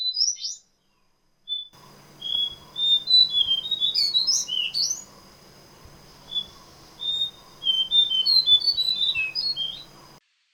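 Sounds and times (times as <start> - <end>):
cingcoang coklat bird calling: 1.8 - 10.2.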